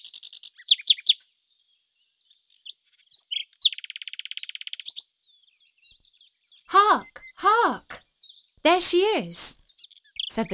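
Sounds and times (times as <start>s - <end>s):
nightingale singing with chirps and rattling trill: 0.0s - 10.5s
speech: 8.6s - 9.6s, 10.4s - 10.5s.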